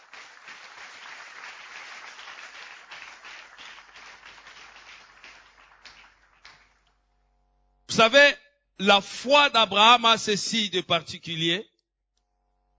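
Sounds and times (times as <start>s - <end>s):
church congregation clapping: 0.0s - 7.0s
speech: 8.0s - 11.7s.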